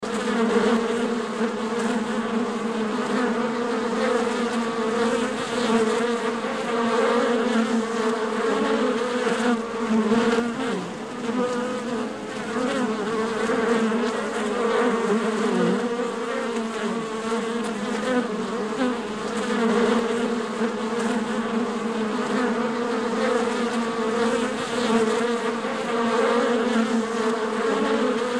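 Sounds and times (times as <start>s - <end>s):
insects and flies buzzing: 0.0s - 28.3s.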